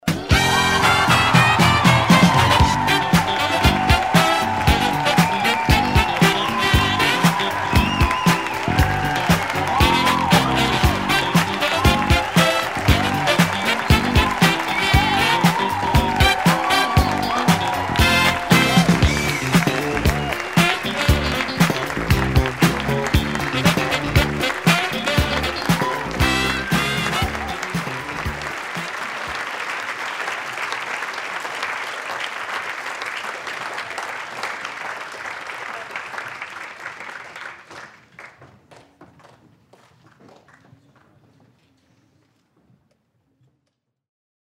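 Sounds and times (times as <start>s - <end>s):
opening theme music: 0.0s - 28.9s
crowd cheering: 0.0s - 38.4s.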